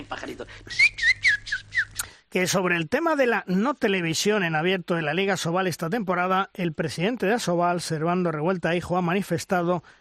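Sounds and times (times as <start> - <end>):
speech: 0.1 - 1.0, 2.3 - 10.0
person whistling an imitation of little birds chirping: 0.7 - 2.1.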